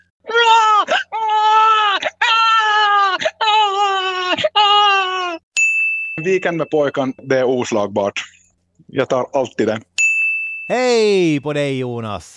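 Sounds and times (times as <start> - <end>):
person's voice imitating a crying baby: 0.2 - 5.4
speech: 6.2 - 8.4, 9.0 - 9.9, 10.7 - 12.3.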